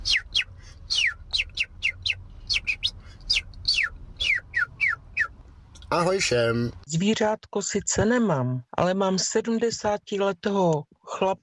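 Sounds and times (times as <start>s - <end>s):
man whistling bright descending chirps imitating birdsong: 0.0s - 5.4s
speech: 5.9s - 11.4s.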